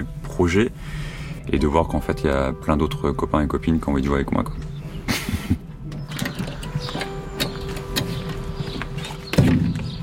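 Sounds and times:
speech: 0:00.0 - 0:04.7
vehicle door shutting with a solid thud: 0:05.8 - 0:10.0.

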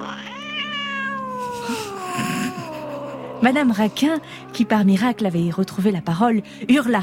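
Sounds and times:
cats meowing in a drawn-out yowl: 0:00.0 - 0:04.6
speech: 0:03.4 - 0:07.0.

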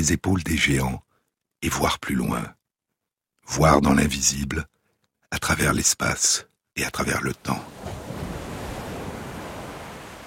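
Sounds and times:
speech: 0:00.0 - 0:01.0, 0:01.6 - 0:02.6, 0:03.5 - 0:04.7, 0:05.3 - 0:08.0
storm wind over the ocean: 0:06.8 - 0:10.2
ocean waves roaring in a storm: 0:07.5 - 0:10.2.

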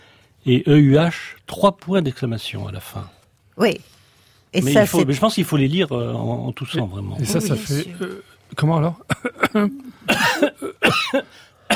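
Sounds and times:
speech: 0:00.4 - 0:11.5
performed cough with a voiced e sound during a text reading: 0:09.1 - 0:11.7.

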